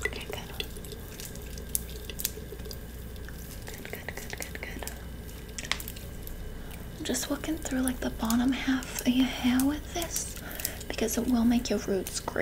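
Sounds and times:
water running from a salon wash basin tap: 0.0 - 12.4
speech: 7.1 - 10.4, 11.0 - 12.4.

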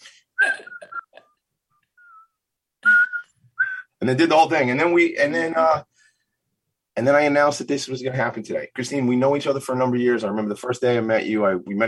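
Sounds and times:
person whistling the tune of a song: 0.4 - 1.1, 2.0 - 4.0
speech: 4.0 - 5.9, 7.0 - 11.8.

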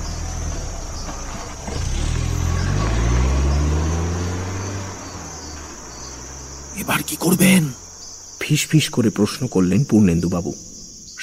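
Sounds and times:
imported car with a foreign engine accelerating away: 0.0 - 8.4
speech: 6.9 - 7.8, 8.5 - 10.7.

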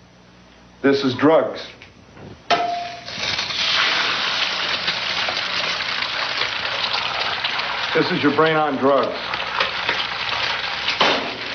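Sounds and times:
speech: 0.8 - 2.4, 7.9 - 9.3
egg frying and sizzling in a pan: 3.0 - 11.5.

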